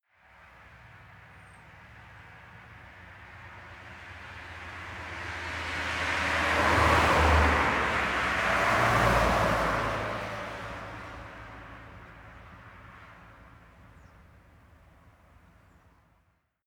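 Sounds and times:
two cars driving by at medium speed: 0:04.4 - 0:12.1.

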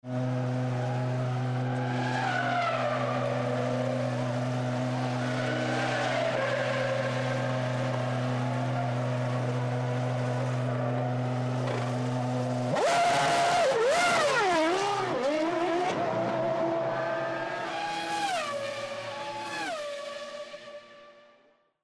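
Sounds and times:
F1 race car pit stop: 0:00.0 - 0:21.5.

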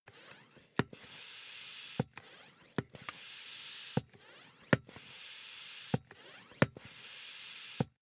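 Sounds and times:
air pump inflating a ball: 0:00.1 - 0:08.0.

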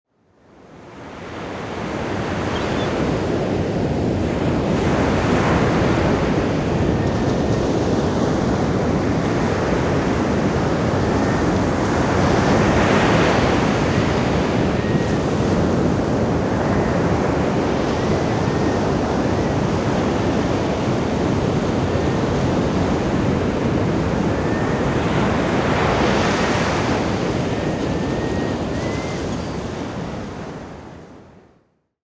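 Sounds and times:
ocean waves on a beach: 0:00.5 - 0:31.4
seagulls calling: 0:01.9 - 0:03.4, 0:10.8 - 0:30.8.

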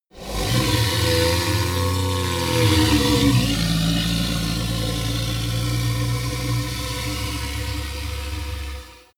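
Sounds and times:
golem growl: 0:00.1 - 0:09.1
screams: 0:00.2 - 0:09.1.

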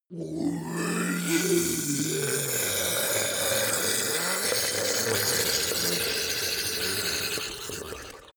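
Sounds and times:
ice golem melting groan: 0:00.1 - 0:08.3.

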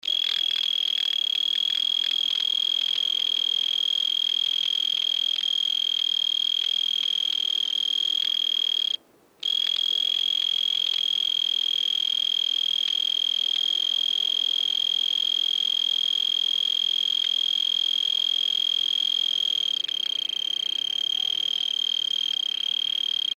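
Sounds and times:
cicada chirping at night: 0:00.0 - 0:23.3.

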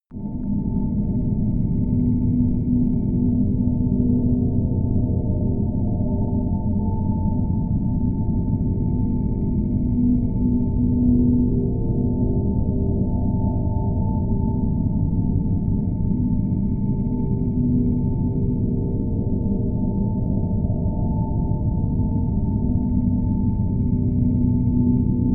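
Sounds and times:
low ringing drone noise: 0:00.1 - 0:25.3.

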